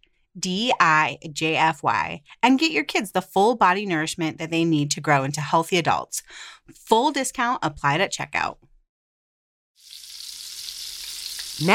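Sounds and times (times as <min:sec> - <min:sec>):
speech: 0:00.4 - 0:08.7, 0:11.6 - 0:11.7
bacon sizzling in a frying pan: 0:09.8 - 0:11.7.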